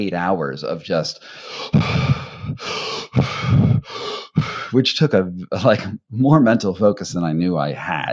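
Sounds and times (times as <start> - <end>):
speech: 0.0 - 8.1
rapid forceful breathing in the Wim Hof technique while climbing: 1.2 - 4.8.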